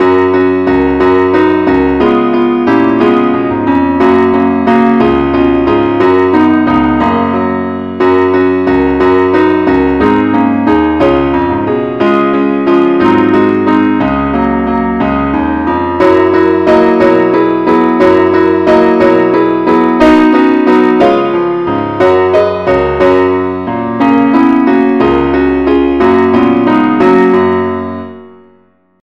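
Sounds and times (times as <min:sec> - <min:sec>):
keyboard F sharp key note: 0:00.0 - 0:28.8.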